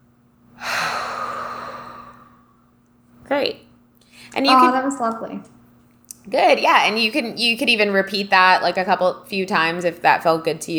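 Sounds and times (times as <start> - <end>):
faint steady hum: 0.0 - 10.7
long deep breath during a calming breathing exercise: 0.6 - 2.7
speech: 3.3 - 3.7, 4.3 - 5.6, 6.3 - 10.7.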